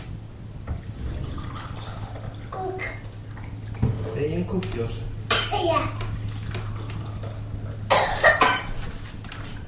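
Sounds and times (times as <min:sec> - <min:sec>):
low steady hum: 0:00.4 - 0:09.4
speech: 0:04.2 - 0:06.0
harsh coughs: 0:07.9 - 0:08.7.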